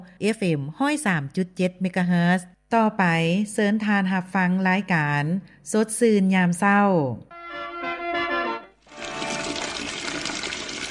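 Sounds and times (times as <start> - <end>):
speech: 0.0 - 7.7
water running from an opened tap at home: 8.9 - 10.9.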